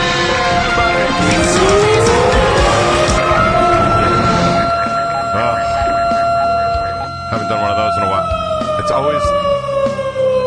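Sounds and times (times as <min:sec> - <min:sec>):
emergency vehicle siren: 0:00.0 - 0:10.4
indistinct vocal sounds: 0:00.5 - 0:06.0.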